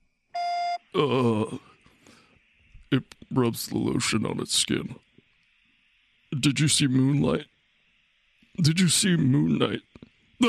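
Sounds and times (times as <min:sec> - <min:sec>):
electronic voicemail beep: 0:00.4 - 0:01.3
speech: 0:00.9 - 0:01.7, 0:02.9 - 0:05.1, 0:06.4 - 0:07.5, 0:08.6 - 0:10.4
wavering groaning vocal sound: 0:01.0 - 0:01.7.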